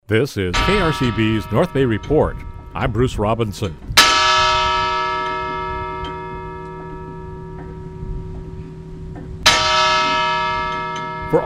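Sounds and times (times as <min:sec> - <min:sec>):
speech: 0:00.1 - 0:03.9
huge bell ringing: 0:00.5 - 0:11.4.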